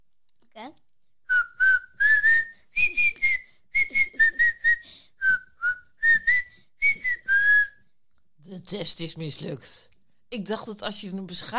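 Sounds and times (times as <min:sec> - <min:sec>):
person whistling a short melodic tune: 0:01.3 - 0:07.8
speech: 0:08.7 - 0:11.5.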